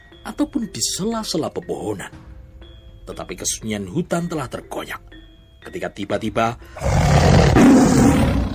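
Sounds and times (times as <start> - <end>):
speech: 0.2 - 2.3, 3.1 - 8.2
loud deep tiger roar in a forest: 6.8 - 8.5.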